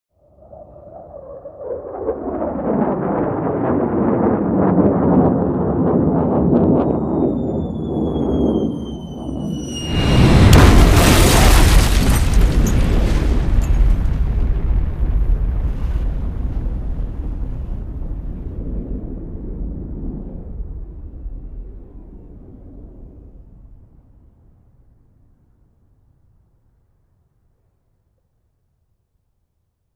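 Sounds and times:
bomber plane flying: 0.2s - 26.4s
explosion: 2.3s - 21.8s
bomb dropping: 6.2s - 18.1s.

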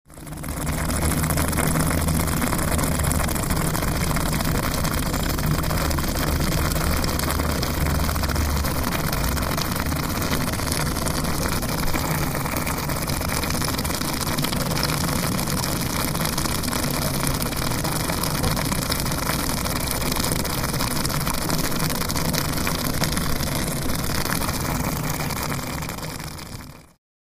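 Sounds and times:
water boiling: 0.0s - 27.0s.

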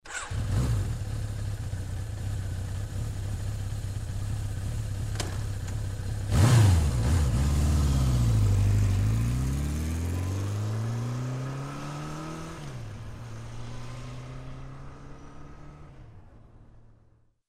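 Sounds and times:
motorcycle starting: 0.0s - 13.4s
motorcycle driving away: 0.1s - 17.0s.

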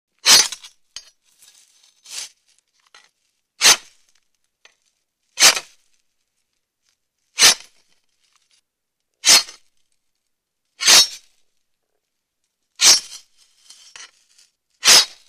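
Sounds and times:
sword hitting a body: 0.2s - 0.7s, 3.6s - 3.9s, 5.4s - 5.7s, 7.4s - 7.8s, 9.2s - 9.6s, 10.8s - 11.2s, 12.8s - 13.2s, 14.8s - 15.2s.

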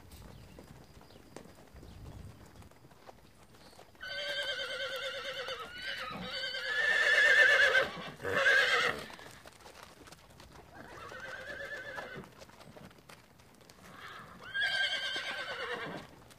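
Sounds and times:
horse whinnying: 4.0s - 9.3s, 10.8s - 12.3s, 13.9s - 16.1s.

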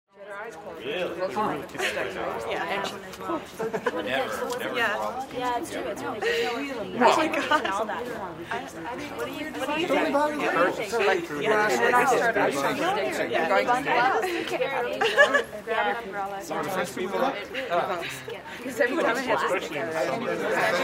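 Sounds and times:
small crowds conversing: 0.2s - 20.8s
small crowds laughing: 1.4s - 4.8s, 5.8s - 8.7s, 9.9s - 16.0s, 17.0s - 20.8s.

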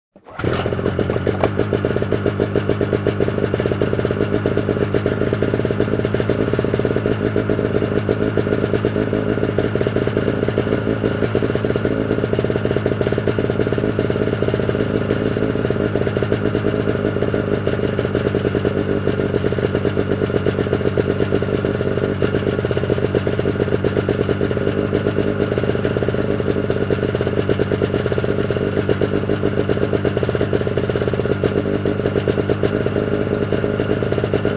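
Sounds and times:
snowmobile starting, idling and turning off: 0.2s - 34.5s.

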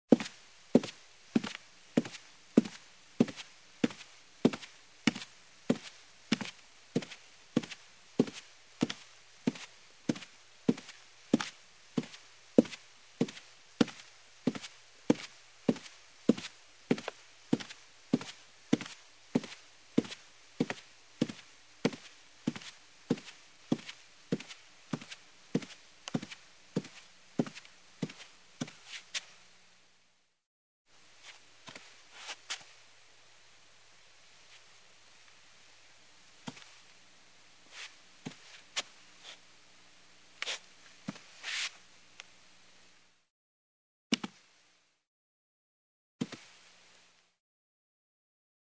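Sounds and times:
heeled footsteps on carpeted wood floor: 0.1s - 29.3s, 38.3s - 38.9s.

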